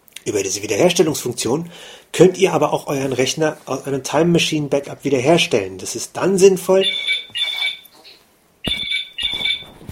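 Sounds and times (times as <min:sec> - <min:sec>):
speech: 0:00.2 - 0:07.5
telephone ringing with warbling electronic tone: 0:06.8 - 0:08.0, 0:08.7 - 0:09.8.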